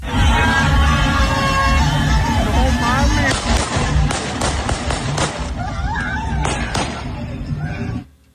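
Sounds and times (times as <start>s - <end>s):
dense crowd shouting and cheering: 0.0s - 8.1s
gunshots fired into the air: 3.2s - 5.6s, 6.4s - 7.1s.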